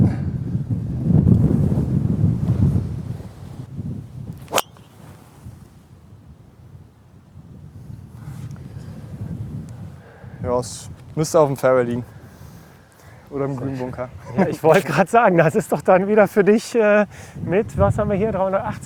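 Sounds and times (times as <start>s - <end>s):
wind buffeting the microphone outdoors: 0.0s - 16.3s, 17.0s - 18.8s
speech: 10.6s - 12.2s, 13.3s - 18.8s.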